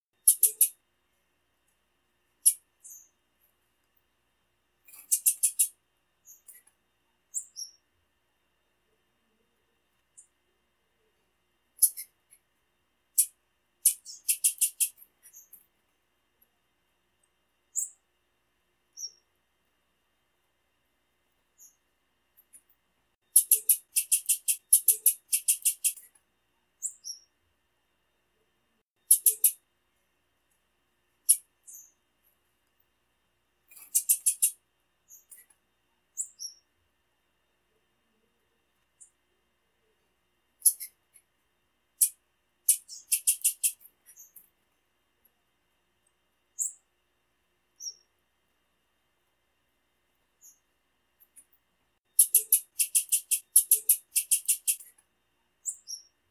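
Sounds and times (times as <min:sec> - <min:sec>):
female blue-black grassquit chirping: 0:00.2 - 0:00.8, 0:02.4 - 0:03.2, 0:04.8 - 0:06.7, 0:07.3 - 0:07.9, 0:10.0 - 0:10.4, 0:11.8 - 0:12.2, 0:13.2 - 0:15.6, 0:17.7 - 0:18.1, 0:18.9 - 0:19.3, 0:21.5 - 0:26.1, 0:26.8 - 0:27.4, 0:29.0 - 0:29.6, 0:31.2 - 0:32.0, 0:33.7 - 0:35.5, 0:36.1 - 0:36.8, 0:40.6 - 0:41.3, 0:42.0 - 0:44.5, 0:46.5 - 0:46.9, 0:47.7 - 0:48.2, 0:50.3 - 0:55.0, 0:55.6 - 0:56.2.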